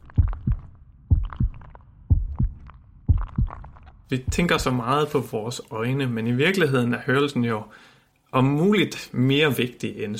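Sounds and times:
blood flowing: 0:00.0 - 0:04.8
heartbeat: 0:00.0 - 0:04.9
speech: 0:04.1 - 0:10.1.

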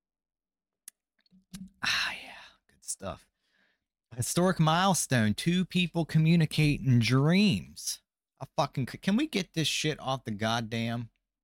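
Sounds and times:
small wet mouth clicks: 0:01.5 - 0:01.8
person swallowing: 0:01.5 - 0:02.0
speech: 0:02.9 - 0:03.3, 0:04.1 - 0:11.1.

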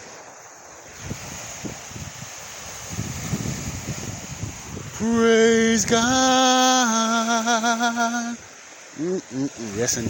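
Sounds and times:
lake waves lapping against the shore at 12th Street Beach in Chicago, Illinois: 0:00.0 - 0:10.0
wind noise: 0:00.8 - 0:06.7, 0:09.4 - 0:10.0
speech: 0:05.0 - 0:08.4, 0:09.0 - 0:10.0.

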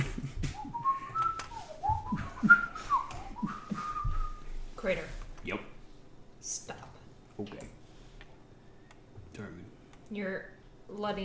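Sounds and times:
soft low thumps: 0:00.0 - 0:04.7
person whistling a wandering, sliding melody: 0:00.4 - 0:04.5
speech: 0:04.8 - 0:05.7, 0:10.2 - 0:11.2.

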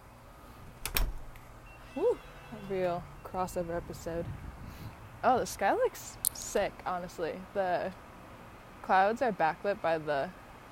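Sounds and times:
door latch and handle clicking as a door opens: 0:00.8 - 0:01.4
speech: 0:02.0 - 0:04.5, 0:05.2 - 0:08.0, 0:08.8 - 0:10.4.

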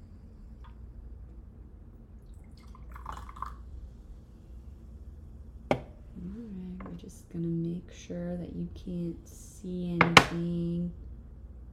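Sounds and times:
liquid trickle: 0:02.1 - 0:04.0
prebiotic soda pouring into small cups: 0:02.2 - 0:04.0
speech: 0:06.3 - 0:11.0.

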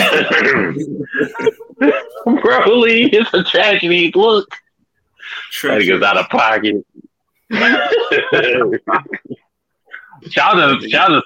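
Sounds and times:
man clearing throat: 0:00.0 - 0:02.3
laughter: 0:00.0 - 0:03.0, 0:07.5 - 0:09.4
speech: 0:00.2 - 0:04.6, 0:05.3 - 0:09.5, 0:10.2 - 0:11.2.

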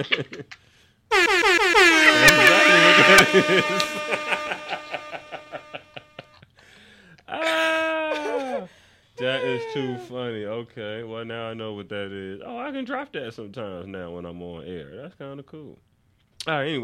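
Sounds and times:
laughter: 0:00.0 - 0:00.5, 0:01.9 - 0:06.2, 0:07.5 - 0:10.1
speech: 0:00.0 - 0:04.8, 0:09.2 - 0:16.8
loud blaring air horn blasts: 0:01.1 - 0:06.3.

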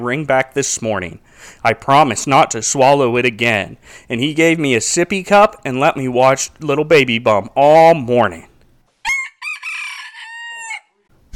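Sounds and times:
speech: 0:00.0 - 0:08.5
rooster crowing: 0:09.0 - 0:11.1
short burst of noise: 0:11.2 - 0:11.3.

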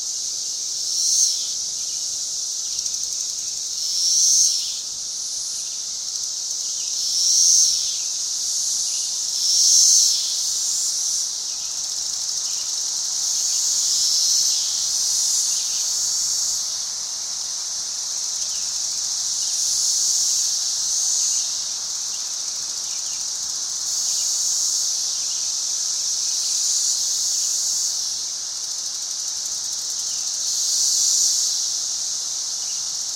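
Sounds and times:
cicada chorus buzzing outdoors in summer: 0:00.0 - 0:33.1.

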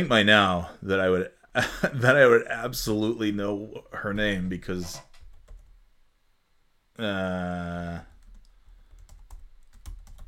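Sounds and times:
speech: 0:00.0 - 0:05.1, 0:07.0 - 0:08.1
typing on a computer keyboard: 0:08.1 - 0:10.2.

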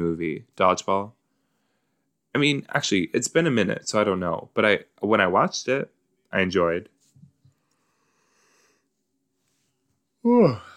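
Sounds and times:
speech: 0:00.0 - 0:01.2, 0:02.3 - 0:07.0, 0:10.2 - 0:10.7
person yawning: 0:10.2 - 0:10.7.

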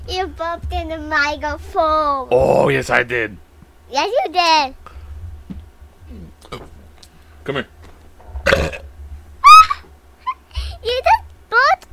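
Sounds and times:
low hum: 0:00.0 - 0:11.9
speech: 0:00.2 - 0:04.8, 0:07.4 - 0:07.8
short rough burp: 0:08.4 - 0:08.9.

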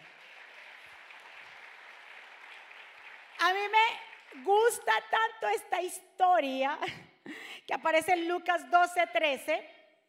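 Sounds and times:
crowd applauding: 0:00.0 - 0:04.9
speech: 0:03.4 - 0:09.7.

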